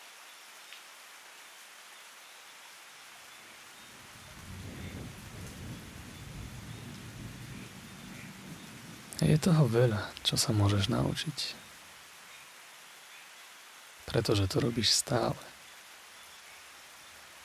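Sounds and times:
rain: 0.0 - 17.4
thunder rumbling: 4.1 - 11.2
speech: 9.2 - 11.6, 14.1 - 15.5.

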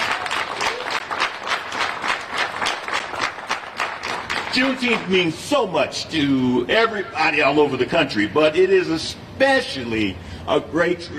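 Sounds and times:
crowd applauding the passing of a state Juneteenth holiday bill: 0.0 - 5.2
speech: 4.5 - 11.1.

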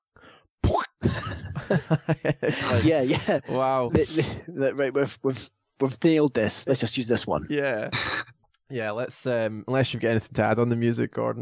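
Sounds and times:
speech: 0.3 - 11.3
voice imitating a movie punch sound effect: 0.6 - 1.2
laughter: 1.0 - 4.6.

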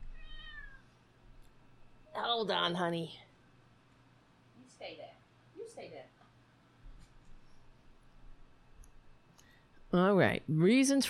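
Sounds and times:
cat hanging over an edge meowing: 0.0 - 0.9
steady low hum: 0.0 - 11.0
speech: 2.2 - 3.3, 4.8 - 6.2, 9.9 - 11.0.

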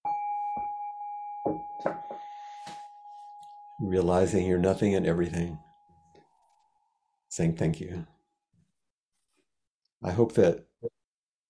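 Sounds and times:
meditation bell ringing with a sustained tone: 0.0 - 6.7
speech: 1.4 - 2.1, 3.8 - 5.7, 7.4 - 8.1, 10.0 - 10.9
soft knocks: 1.5 - 2.3.

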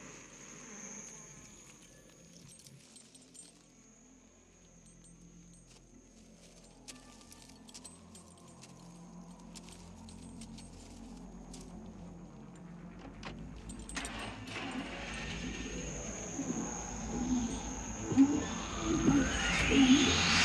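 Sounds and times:
low steady hum: 0.0 - 20.4
keys jangling and clinking: 4.9 - 15.0.

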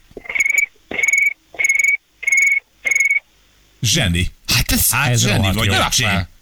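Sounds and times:
person imitating cricket chirping over the phone: 0.2 - 3.3
speech: 3.8 - 6.3.

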